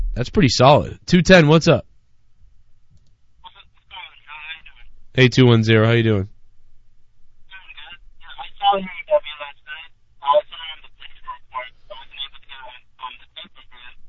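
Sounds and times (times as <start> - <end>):
speech: 0.2 - 1.9, 5.2 - 6.3, 8.7 - 9.0
choppy garbled voice over narrowband phone line: 7.5 - 13.9.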